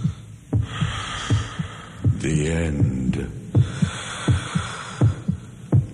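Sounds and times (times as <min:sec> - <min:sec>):
heavy breathing: 0:00.0 - 0:02.2, 0:03.5 - 0:05.9
heartbeat thumping: 0:00.0 - 0:05.9
speech: 0:02.2 - 0:03.4.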